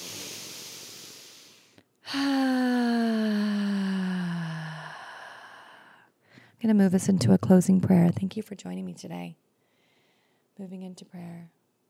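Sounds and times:
deep breath during a guided forgiveness meditation: 0:00.0 - 0:06.6, 0:09.6 - 0:10.5
speech: 0:02.1 - 0:02.3, 0:06.6 - 0:09.5, 0:10.6 - 0:11.6.

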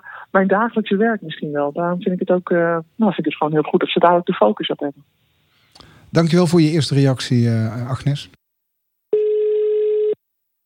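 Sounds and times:
speech: 0:00.3 - 0:05.2, 0:06.1 - 0:08.4
steady telephone line tone as a phone call connects: 0:09.1 - 0:10.2.

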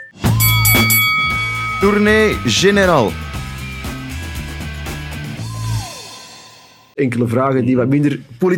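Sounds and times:
small bell ringing: 0:00.3 - 0:04.1
jingle music: 0:00.3 - 0:05.3
speech: 0:01.8 - 0:03.3, 0:07.0 - 0:08.5.

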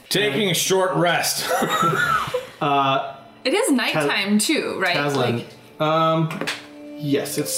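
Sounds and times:
speech: 0:00.1 - 0:07.5
rough raspy coughs: 0:01.5 - 0:02.4.

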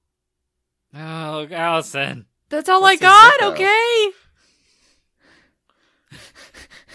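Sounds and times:
speech: 0:00.9 - 0:04.2
heavy breathing and panting: 0:04.2 - 0:06.9.

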